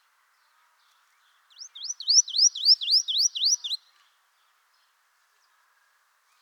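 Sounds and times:
Marsh tit Poecile palustris calling with high upslurred notes: 0:01.6 - 0:03.8.

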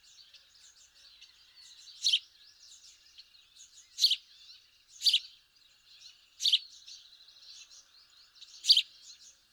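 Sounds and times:
house sparrow Passer domesticus chirping: 0:01.9 - 0:05.4, 0:06.0 - 0:09.4.

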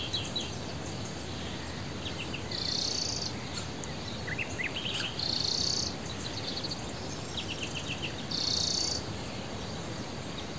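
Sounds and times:
background hiss: 0:00.0 - 0:10.5
European greenfinch Chloris chloris calls: 0:02.5 - 0:06.0.

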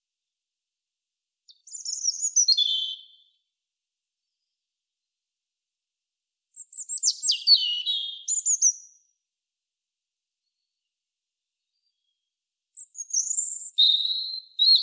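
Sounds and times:
European robin Erithacus rubecula singing: 0:01.5 - 0:03.4, 0:06.6 - 0:09.1, 0:11.6 - 0:14.8.

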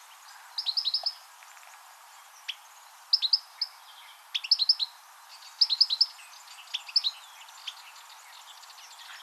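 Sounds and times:
European goldfinch Carduelis carduelis twittering calls: 0:00.6 - 0:01.2, 0:02.4 - 0:03.7, 0:04.3 - 0:09.2.

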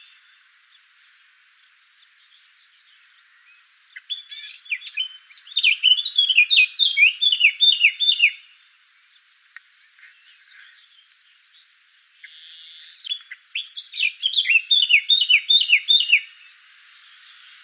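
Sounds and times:
Eurasian blackcap Sylvia atricapilla singing: 0:01.6 - 0:17.6.

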